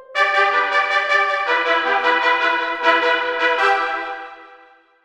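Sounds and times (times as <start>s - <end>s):
cornet trumpet fanfare: 0.2s - 5.0s.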